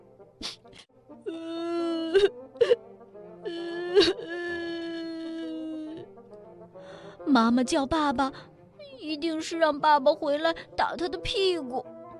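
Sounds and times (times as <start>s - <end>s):
person wailing in drawn-out sobbing cries: 0.4s - 2.8s, 3.4s - 6.0s
speech: 2.2s - 2.4s, 7.4s - 8.5s, 9.1s - 11.9s.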